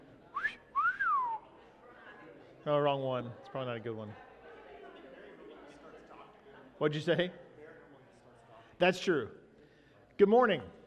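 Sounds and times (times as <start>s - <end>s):
person whistling: 0.4s - 1.4s
speech: 2.6s - 4.3s, 6.8s - 7.4s, 8.8s - 9.4s, 10.2s - 10.8s.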